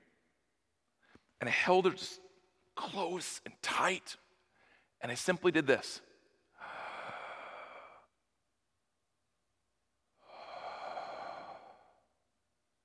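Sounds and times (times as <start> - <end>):
speech: 1.4 - 2.2, 2.8 - 4.2, 5.0 - 6.1
slow deep breath in: 6.5 - 8.2, 10.2 - 12.2
long breath out: 6.6 - 8.1, 10.2 - 12.1.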